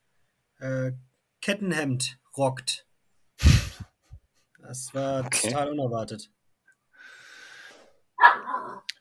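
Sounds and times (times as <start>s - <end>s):
speech: 0.6s - 2.9s, 4.6s - 6.4s
miniature spitz puppy barking and yelping: 8.2s - 8.8s.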